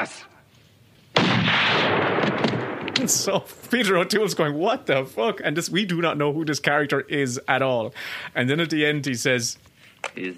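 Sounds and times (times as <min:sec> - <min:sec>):
speech: 0:00.0 - 0:00.3, 0:03.0 - 0:10.3
gunshot burst from a film scene: 0:01.2 - 0:03.4.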